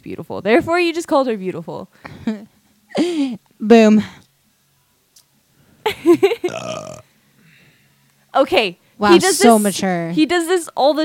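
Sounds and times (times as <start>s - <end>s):
speech: 0.0s - 4.2s, 5.9s - 7.1s, 8.4s - 11.0s
man burping: 6.3s - 7.1s.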